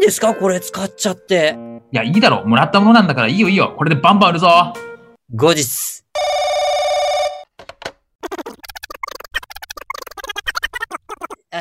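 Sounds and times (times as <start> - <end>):
speech: 0.0 - 6.4
loud trilling telephone bell ringing: 6.2 - 7.5.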